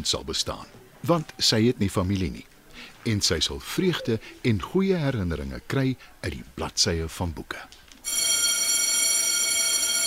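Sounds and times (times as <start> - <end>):
speech: 0.0 - 7.8
electric school bell ringing: 8.0 - 10.0.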